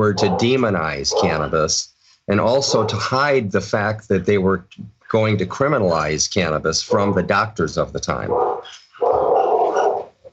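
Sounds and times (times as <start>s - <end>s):
dog growling bark: 0.0s - 1.6s, 2.4s - 3.2s, 6.9s - 7.4s, 8.2s - 10.2s
speech: 0.0s - 8.8s.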